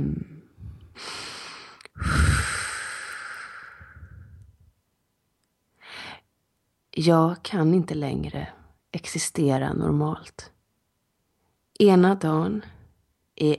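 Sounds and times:
deep breath taken before singing: 0.6 - 4.4
speech: 7.0 - 10.5, 11.8 - 12.8, 13.4 - 13.5.

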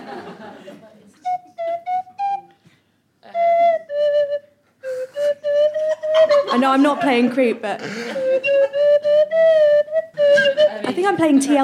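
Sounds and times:
laughter: 0.0 - 1.2, 5.8 - 8.9
slide whistle playing a tune: 1.3 - 2.6, 3.3 - 6.5, 8.2 - 10.8
speech: 6.6 - 9.0, 10.9 - 11.6.

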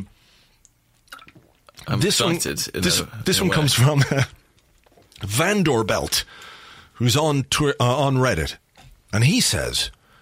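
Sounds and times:
person sipping water: 0.6 - 1.9
soft wet slurping and swallowing: 1.0 - 1.9
speech: 1.8 - 4.4, 5.2 - 10.0.

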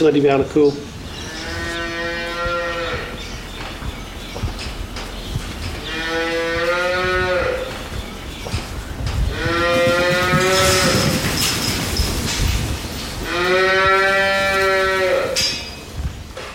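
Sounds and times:
farmyard rustle: 0.0 - 16.5
cows mooing on a dairy farm: 1.2 - 3.4, 5.6 - 8.0, 9.3 - 11.8, 13.2 - 15.6.

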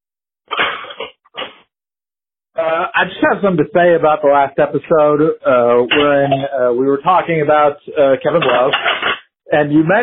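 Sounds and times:
speech: 2.6 - 10.0
dishes clattering as they are set into a cupboard: 5.9 - 6.5, 8.4 - 9.3.

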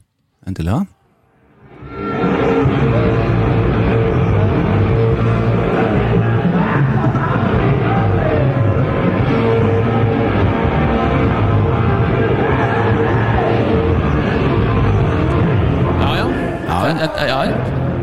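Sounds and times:
speech: 0.5 - 1.0
crowd noise and shouting: 1.7 - 18.0
live rock concert recording with full-band sound: 1.9 - 16.0.

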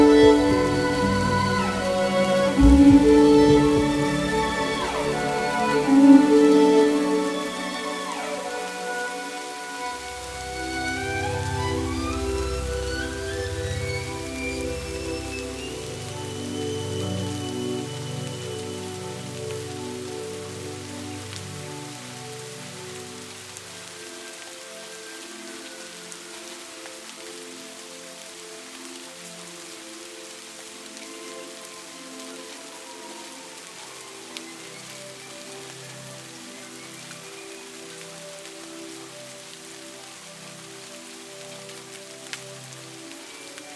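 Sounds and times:
slow violin melody with long held notes and gliding slides: 0.0 - 43.7
soft steady rain-like patter: 0.0 - 43.7.

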